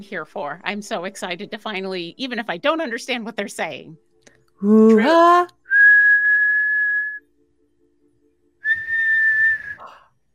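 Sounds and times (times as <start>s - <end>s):
speech: 0.0s - 5.6s
person whistling a tune: 5.6s - 7.2s, 8.6s - 10.0s.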